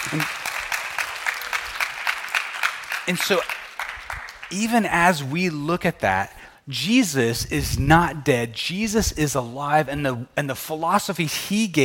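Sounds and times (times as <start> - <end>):
audience applause: 0.0 - 4.5
speech: 0.1 - 0.5, 3.1 - 3.6, 4.5 - 11.8.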